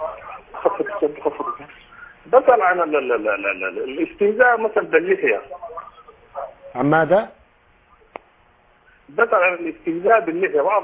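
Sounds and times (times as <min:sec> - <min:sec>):
steady low hiss: 0:00.0 - 0:10.8
television voices in Sudan over a phone line: 0:00.0 - 0:10.8
speech: 0:00.8 - 0:05.6, 0:06.8 - 0:07.4, 0:09.1 - 0:10.8.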